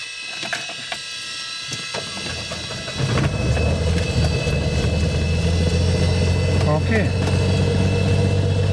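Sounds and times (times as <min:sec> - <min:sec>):
six-cylinder 230 hp 8-litre aircraft piston engine running: 0:00.0 - 0:08.7
speech: 0:06.9 - 0:07.2.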